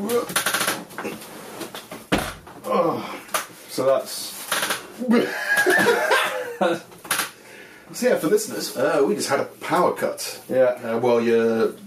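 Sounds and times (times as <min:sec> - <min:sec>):
speech: 0:00.1 - 0:01.4, 0:03.8 - 0:04.4, 0:05.0 - 0:06.9, 0:07.9 - 0:11.8
door shutting with a solid thud: 0:02.1 - 0:02.6
laughter: 0:05.0 - 0:06.9.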